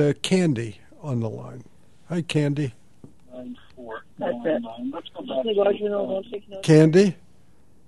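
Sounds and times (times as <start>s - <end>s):
speech: 0.0s - 2.8s, 3.4s - 7.2s
tinny band-limited voices through a phone line: 3.3s - 7.1s
radio broadcast playing on the caller's end: 3.4s - 6.9s.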